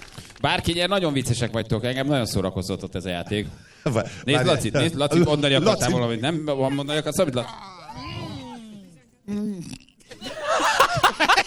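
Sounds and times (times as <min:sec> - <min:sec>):
speech: 0:00.4 - 0:08.2, 0:09.3 - 0:09.8
people chattering up: 0:03.2 - 0:11.4
burst of loud overlapping laughter: 0:05.7 - 0:11.4
low drawn-out burp: 0:06.8 - 0:11.1.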